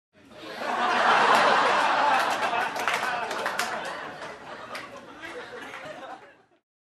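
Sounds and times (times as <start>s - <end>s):
audience in a room laughing: 0.3s - 6.6s
audience in a room clapping: 0.7s - 6.2s.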